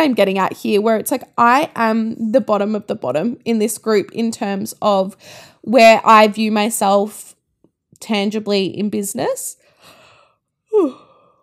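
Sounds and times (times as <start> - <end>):
speech: 0.0 - 7.3, 8.0 - 9.6, 10.8 - 11.0
soft breathing: 9.6 - 10.4
person yawning: 10.7 - 11.2.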